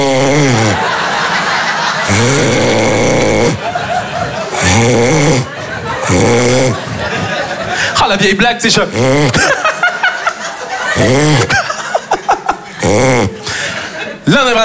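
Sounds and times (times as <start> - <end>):
person imitating snoring: 0.0 - 1.0, 1.8 - 8.0, 8.9 - 9.6, 10.9 - 11.8, 12.8 - 13.8
laughter: 0.0 - 14.6
speech: 4.8 - 5.5, 8.1 - 9.6, 11.0 - 11.6.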